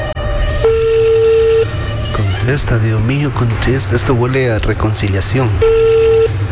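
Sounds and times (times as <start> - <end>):
telephone ringing on an outgoing call: 0.1 - 1.7, 5.6 - 6.3
speech: 2.5 - 6.1.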